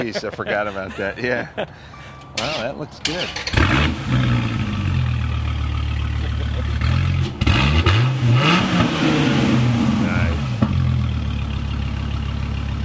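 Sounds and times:
laughter: 0.0 - 2.0, 6.0 - 6.8
speech: 0.0 - 4.2
V10 sports car engine with side exhaust idling and revving: 3.2 - 12.8.

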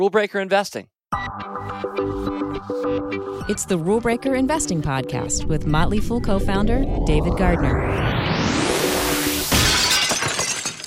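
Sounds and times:
speech: 0.0 - 8.6
rushing noise: 6.1 - 9.5
window glass shattering: 9.4 - 10.8.

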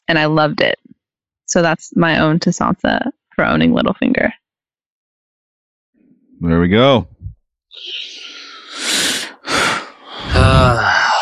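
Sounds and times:
speech: 0.1 - 4.4, 6.4 - 8.4, 10.3 - 11.2
heavy exaggerated rasping breathing: 7.8 - 11.2
voiced groan-like exhale: 7.8 - 11.2.

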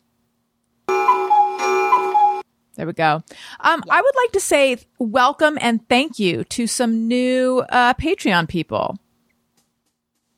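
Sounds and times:
cuckoo clock two-note calls: 0.9 - 2.4
speech: 2.8 - 9.0.

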